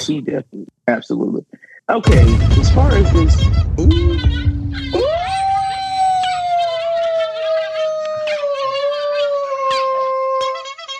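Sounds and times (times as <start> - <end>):
speech: 0.0 - 4.4
dog howling: 4.9 - 10.6.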